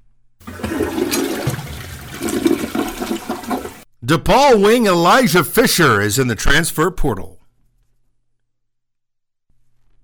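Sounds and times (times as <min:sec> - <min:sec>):
toilet flushing: 0:00.4 - 0:03.8
speech: 0:04.1 - 0:07.4.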